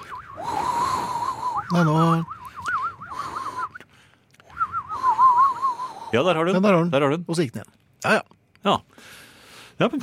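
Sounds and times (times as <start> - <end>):
breathy warbling mouth whistle imitating a panpipe: 0.0 - 6.1
speech: 1.7 - 2.4, 6.1 - 9.2, 9.8 - 10.0.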